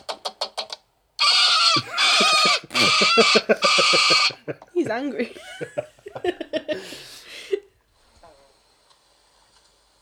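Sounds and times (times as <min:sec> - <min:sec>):
parrot squawking: 0:01.2 - 0:04.4
speech: 0:01.8 - 0:07.0
laughter: 0:01.8 - 0:07.1.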